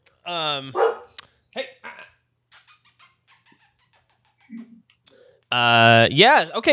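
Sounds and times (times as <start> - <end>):
speech: 0.2 - 1.6, 5.5 - 6.7
dog barking loudly: 0.8 - 1.1.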